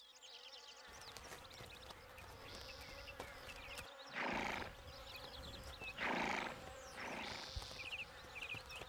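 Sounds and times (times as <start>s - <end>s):
flies and insects buzzing outdoors: 0.1s - 8.8s
horse giving short breathy neighs: 4.2s - 4.7s, 6.0s - 7.5s.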